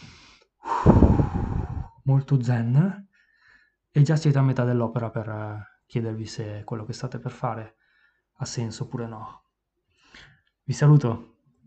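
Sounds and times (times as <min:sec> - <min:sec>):
person taking a deep breath in and out: 0:00.0 - 0:02.0, 0:03.1 - 0:03.8, 0:07.8 - 0:08.3, 0:09.9 - 0:10.5
speech: 0:02.1 - 0:03.0, 0:04.0 - 0:07.8, 0:08.4 - 0:09.4, 0:10.2 - 0:11.3.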